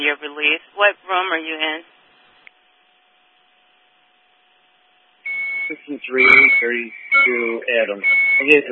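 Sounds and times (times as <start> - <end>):
speech: 0.0 - 2.0, 5.7 - 8.7
hissy radio-like static: 0.0 - 2.4, 5.7 - 8.7
faint constant tone: 0.0 - 8.7
electronic beeping: 5.3 - 8.7.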